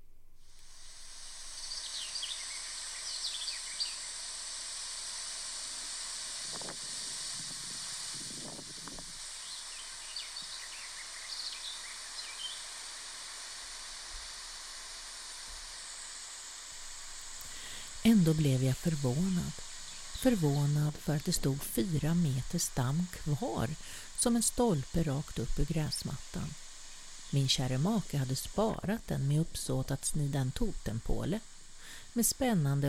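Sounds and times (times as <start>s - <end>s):
strong wind rushing through trees: 0.8s - 32.8s
faint bird chirps: 1.5s - 4.2s, 9.4s - 12.7s
speech: 18.1s - 26.6s, 27.3s - 32.8s.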